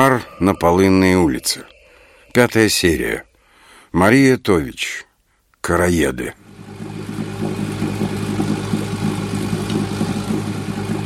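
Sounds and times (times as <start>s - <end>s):
speech: 0.1s - 1.7s, 2.3s - 3.3s, 3.9s - 6.4s
motorboat engine droning on open water: 6.4s - 11.0s.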